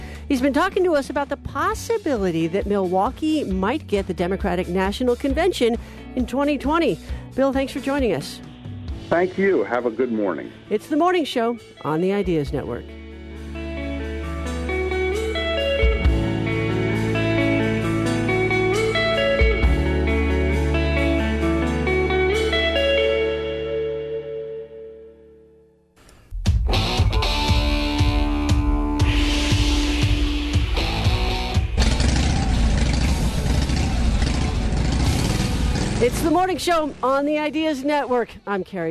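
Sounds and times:
music: 0.0s - 38.9s
speech: 0.3s - 8.5s, 9.1s - 13.0s, 36.5s - 38.9s
Harley-Davidson motorcycle engine rumbling and revving: 30.8s - 38.2s.

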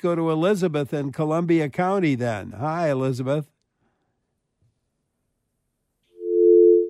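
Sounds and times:
speech: 0.0s - 3.6s
low-pitched phone line tone after a dropped radio call-in call: 6.2s - 6.8s.

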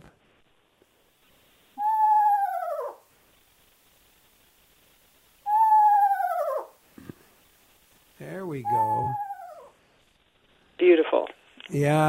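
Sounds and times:
screech owl call: 1.7s - 3.1s, 5.4s - 6.8s, 8.3s - 9.8s
speech: 8.6s - 9.3s, 10.8s - 12.0s.

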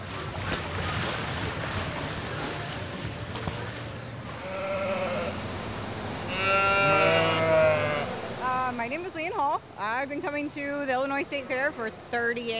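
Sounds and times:
busy outdoor noise at the Illinois State Fair: 0.0s - 12.5s
Oxford sheep bleating at the Illinois State Fair: 4.3s - 5.5s, 6.2s - 8.2s
speech: 9.4s - 12.5s.

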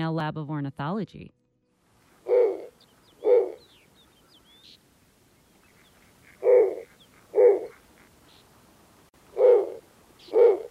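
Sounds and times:
speech: 0.1s - 1.4s
snowy owl low raspy hoots: 2.2s - 4.5s, 5.7s - 8.1s, 9.3s - 10.6s
faint bird chirps: 2.3s - 8.5s.

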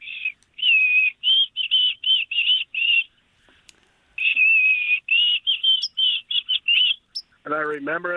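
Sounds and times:
white-throated sparrow song: 0.0s - 3.2s, 4.2s - 7.4s
speech: 7.6s - 8.1s.

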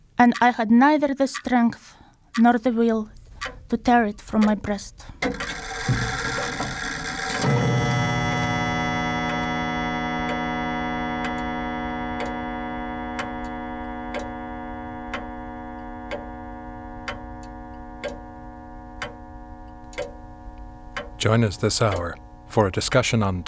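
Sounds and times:
clock ticking: 0.0s - 23.4s
speech: 0.2s - 6.1s, 21.3s - 23.4s
sustained humming drone: 5.4s - 23.4s.

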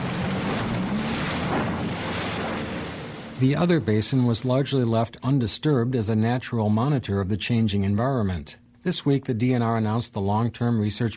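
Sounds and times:
research boat motor droning on a lake: 0.0s - 4.4s
rushing water: 0.0s - 4.5s
speech: 3.4s - 11.1s.

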